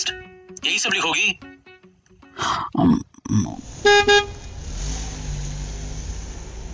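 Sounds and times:
speech: 0.1s - 1.5s, 2.4s - 4.4s
gruff grunting: 2.4s - 3.7s
low engine rumble: 3.6s - 6.7s
car horn honks: 3.8s - 4.5s.

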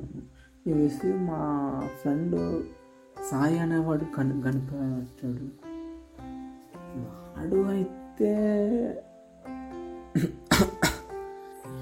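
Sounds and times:
speech: 0.6s - 5.7s, 6.9s - 9.1s, 10.1s - 10.8s
coughing: 10.1s - 11.2s.

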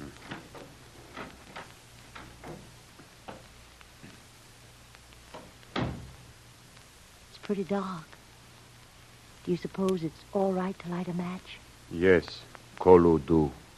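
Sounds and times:
cellar door opening: 0.0s - 3.5s, 5.3s - 6.2s
low steady hum: 0.0s - 13.7s
uneven wooden clicks and knocks: 0.2s - 4.2s
louder thump: 5.4s - 6.2s
speech: 7.5s - 8.1s, 9.5s - 13.6s.

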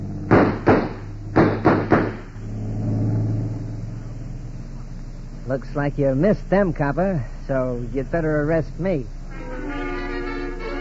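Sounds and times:
motorboat engine revving and pulling away: 0.0s - 10.7s
sharp loud bangs: 0.2s - 2.4s
speech: 5.5s - 9.2s.

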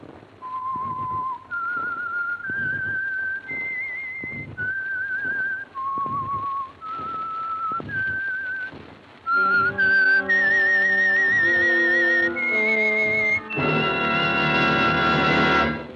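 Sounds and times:
whistled theme signature tune melody: 0.4s - 15.9s
full orchestra playing loud sustained chords: 9.4s - 15.9s.

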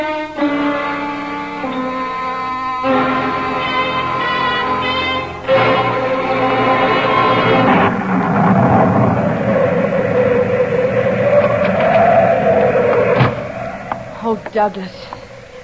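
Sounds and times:
sustained tonal layer: 0.0s - 15.6s
thunderstorm roaring: 2.9s - 15.6s
sharp thunderclap: 3.9s - 15.6s
speech: 14.6s - 15.2s.

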